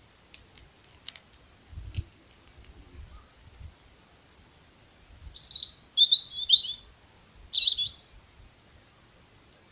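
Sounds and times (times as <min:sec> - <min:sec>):
European robin Erithacus rubecula singing: 0:05.4 - 0:08.2.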